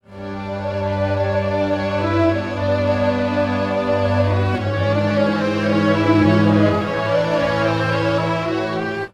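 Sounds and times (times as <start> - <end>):
pitch-shifted strings: 0.2 - 9.1.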